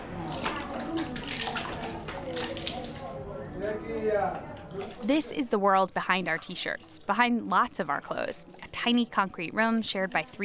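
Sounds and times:
cold water dumped over head in shower: 0.0s - 3.2s
faint voices murmuring: 0.0s - 5.4s
speech: 4.0s - 10.4s.

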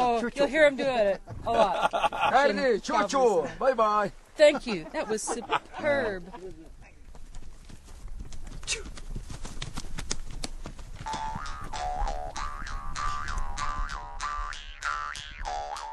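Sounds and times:
outdoor ambience: 0.0s - 15.9s
speech: 0.2s - 6.6s
laughter: 1.0s - 3.6s, 4.4s - 6.8s
Mongolian horse hooves clip-clopping during horseback riding: 5.5s - 14.0s
wavering boing-like tonal sound: 11.1s - 15.9s.

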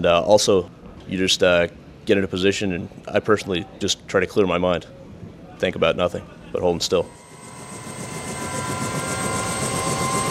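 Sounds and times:
speech: 0.0s - 5.0s, 5.6s - 7.2s
Cobra helicopter gunship flying overhead: 7.0s - 10.3s.

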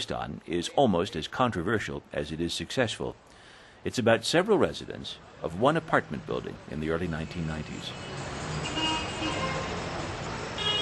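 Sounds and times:
speech: 0.0s - 8.3s
congested city traffic rumbling: 0.0s - 10.8s
car horns honking: 8.0s - 10.8s.

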